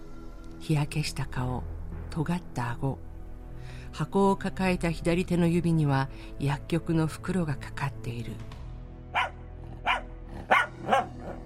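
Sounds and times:
speech: 0.6 - 8.6
dog barking: 9.1 - 11.4.

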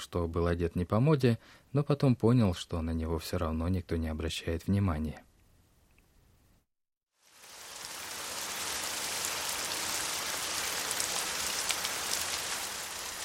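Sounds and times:
speech: 0.0 - 5.3
steady rain falling: 7.2 - 13.2.

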